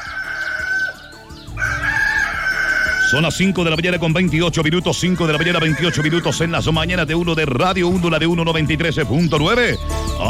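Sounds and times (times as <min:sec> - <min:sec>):
rooster crowing: 0:00.0 - 0:03.2, 0:05.2 - 0:06.4
speech: 0:03.1 - 0:10.2.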